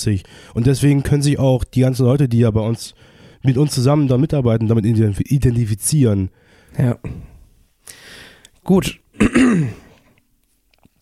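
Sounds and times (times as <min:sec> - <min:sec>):
speech: 0:00.0 - 0:07.3, 0:08.6 - 0:09.8
rough throat clearing: 0:09.2 - 0:10.0.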